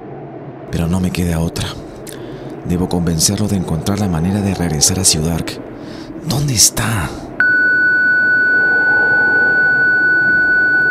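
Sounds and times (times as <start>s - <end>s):
low rumble: 0.0s - 10.8s
speech: 0.7s - 1.9s, 2.6s - 7.5s
high-pitched electronic distress signal beeping: 7.4s - 10.8s.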